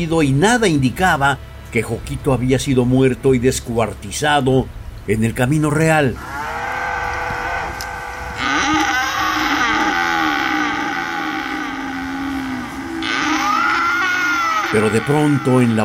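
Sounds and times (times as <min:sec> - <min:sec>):
speech: 0:00.0 - 0:06.4, 0:14.7 - 0:15.8
cattle bellowing: 0:06.2 - 0:15.8.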